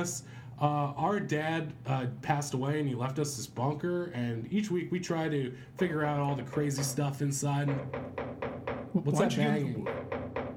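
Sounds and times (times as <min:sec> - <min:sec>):
speech: 0:00.0 - 0:10.0
forceful banging on a door: 0:06.4 - 0:10.5.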